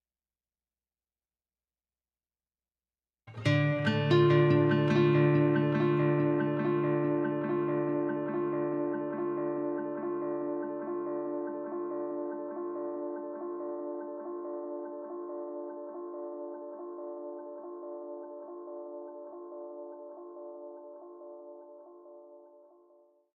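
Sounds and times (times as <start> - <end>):
acoustic guitar arpeggio: 3.3 - 21.5.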